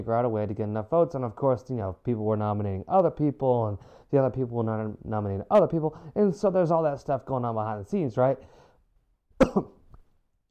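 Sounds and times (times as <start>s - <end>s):
speech: 0.0s - 8.6s, 9.4s - 9.8s
person coughing: 9.4s - 9.8s.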